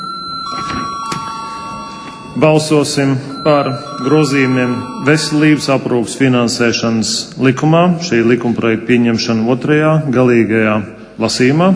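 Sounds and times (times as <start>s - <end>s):
electric bell ringing in a parliament chamber before a vote: 0.0s - 6.4s
speech: 2.4s - 11.7s.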